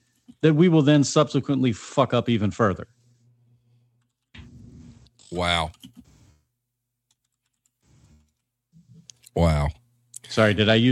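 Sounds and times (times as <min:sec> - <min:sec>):
speech: 0:00.4 - 0:03.0, 0:05.3 - 0:06.0, 0:09.4 - 0:10.9
computer keyboard typing: 0:07.1 - 0:07.7.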